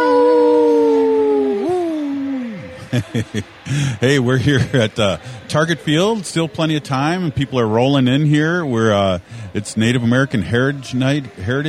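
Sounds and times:
single long wolf howl: 0.0s - 2.4s
short bursts of laughter: 1.5s - 6.2s
speech: 3.0s - 11.6s.

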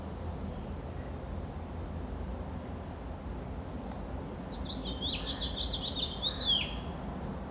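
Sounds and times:
low outdoor rumble: 0.0s - 7.5s
house finch singing: 4.6s - 6.9s.

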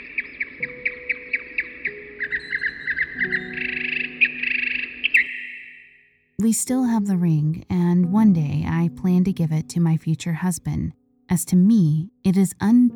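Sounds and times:
birds chirping outdoors: 0.0s - 6.1s
speech: 6.4s - 12.9s.

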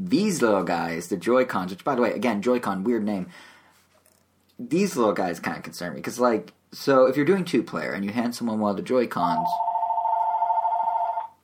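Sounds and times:
speech: 0.1s - 3.5s, 4.6s - 9.7s
phone ringing with a steady electronic tone: 9.4s - 11.4s.

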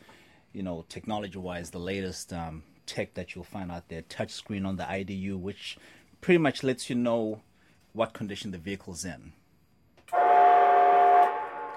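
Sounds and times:
speech: 0.6s - 9.4s
train horn blaring: 10.1s - 11.7s.

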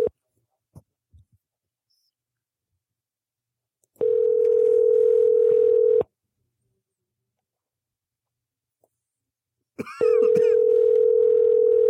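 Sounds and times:
telephone line tone while placing a call: 4.0s - 6.0s, 10.1s - 11.8s.

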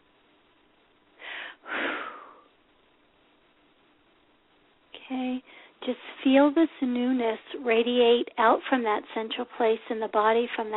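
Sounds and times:
deep breath taken during a guided meditation: 1.2s - 2.5s, 5.5s - 5.8s
speech: 5.1s - 10.7s.

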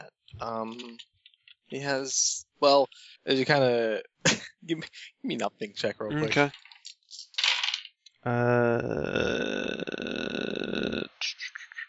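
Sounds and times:
speech: 0.4s - 6.6s, 8.2s - 10.1s
dice clattering across a hard table: 6.3s - 8.0s.

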